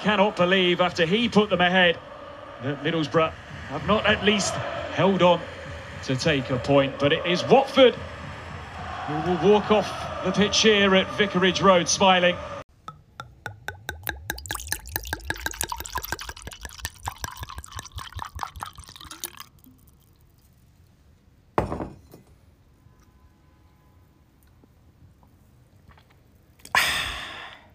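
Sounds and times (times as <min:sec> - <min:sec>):
speech: 0:00.0 - 0:08.1, 0:09.1 - 0:12.5
breathy rush: 0:00.0 - 0:12.6
drink glugging into a glass: 0:12.9 - 0:20.5.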